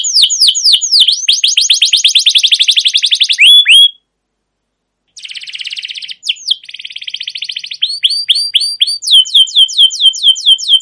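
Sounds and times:
canary song for luring and training canaries: 0:00.0 - 0:04.1, 0:05.1 - 0:10.7.

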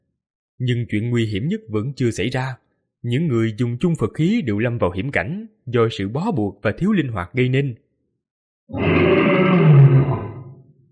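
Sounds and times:
speech: 0:00.6 - 0:07.8, 0:08.7 - 0:10.2
crocodile roaring: 0:08.7 - 0:10.7.

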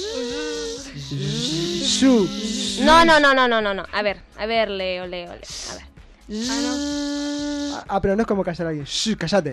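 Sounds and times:
several voices imitating a buzzing bee: 0:00.0 - 0:03.2, 0:05.4 - 0:07.9
speech: 0:01.1 - 0:01.4, 0:02.0 - 0:07.2, 0:07.8 - 0:09.5.

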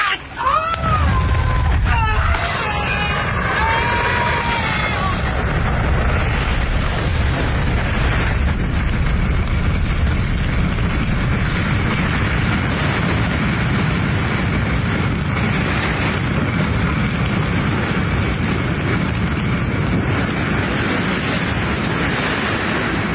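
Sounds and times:
people shouting: 0:00.0 - 0:05.5
TNT explosion set off by a grenade in a crate aboard a drifting boat: 0:00.4 - 0:23.1.

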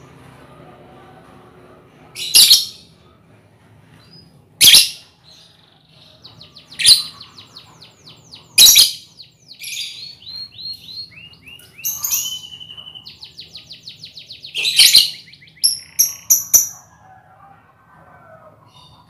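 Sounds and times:
lovebird ngekek song with shrill squawk, whistled notes, trills and squeaks: 0:02.2 - 0:02.9, 0:04.6 - 0:05.1, 0:06.7 - 0:07.7, 0:08.3 - 0:16.9.

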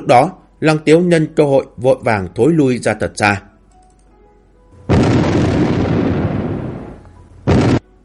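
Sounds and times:
speech: 0:00.1 - 0:03.5
explosions of thrown thunder bombs landing near a marsh: 0:04.9 - 0:07.8.

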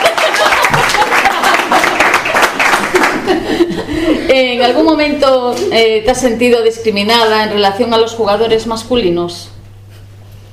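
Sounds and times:
audience applause: 0:00.0 - 0:03.7
audience laughter: 0:00.0 - 0:04.3
speech: 0:04.4 - 0:09.6.

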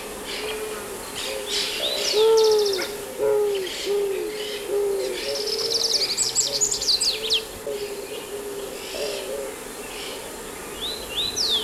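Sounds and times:
steady background hiss: 0:00.0 - 0:11.6
eared dove Zenaida auriculata cooing: 0:00.3 - 0:10.3.

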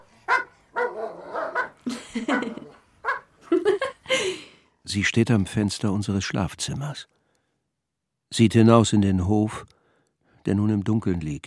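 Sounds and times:
Dobermans barking in a home yard: 0:00.0 - 0:03.4
laughter: 0:01.8 - 0:02.8, 0:03.5 - 0:04.4
speech: 0:04.9 - 0:07.2, 0:08.3 - 0:09.8, 0:10.4 - 0:11.4.

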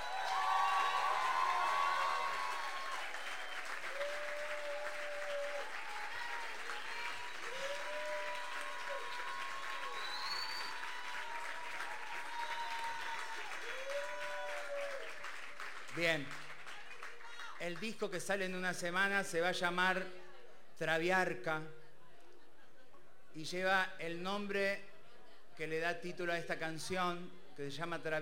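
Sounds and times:
people cheering: 0:00.0 - 0:15.6
audience applauding a singer's songs: 0:00.0 - 0:18.0
speech: 0:16.0 - 0:16.4, 0:17.6 - 0:20.2, 0:20.8 - 0:21.8, 0:23.4 - 0:24.9, 0:25.6 - 0:28.2.

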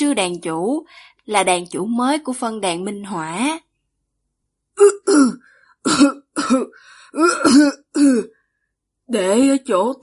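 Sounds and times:
speech: 0:00.0 - 0:03.7, 0:04.8 - 0:08.4, 0:09.1 - 0:10.0
frail sickly older man clearing throat: 0:04.8 - 0:08.2
frail sickly older man coughing: 0:04.8 - 0:08.2.

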